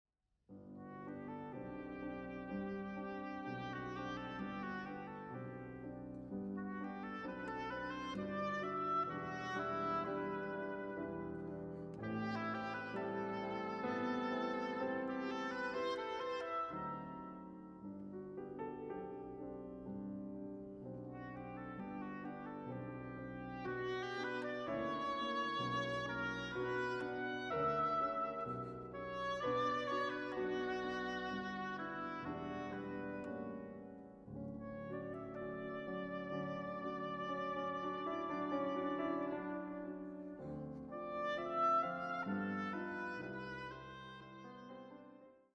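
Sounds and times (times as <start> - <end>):
piano: 0.5 - 45.5.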